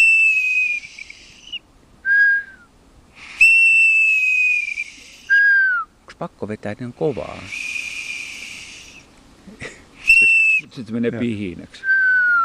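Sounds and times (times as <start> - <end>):
metal bird whistle imitating a golden plover call: 0.0 - 5.9, 7.3 - 9.0, 10.0 - 10.7
speech: 6.2 - 7.7, 10.7 - 11.9.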